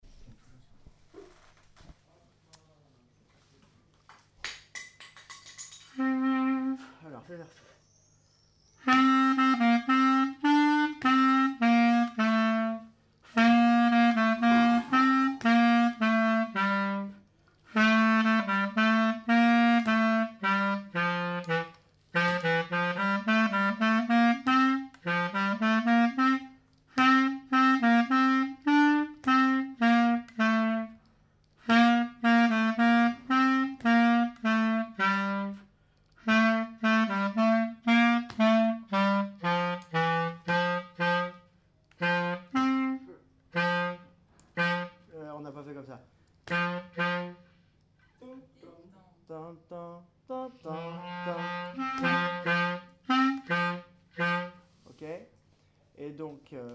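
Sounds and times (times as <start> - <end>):
slow Greek-style clarinet melody: 5.9 - 7.0, 8.8 - 45.3, 46.4 - 47.7, 50.5 - 55.2.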